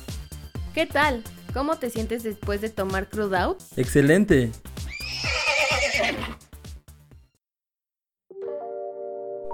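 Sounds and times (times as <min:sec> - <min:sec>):
speech: 0:00.8 - 0:05.2
horse neighing: 0:04.8 - 0:06.4.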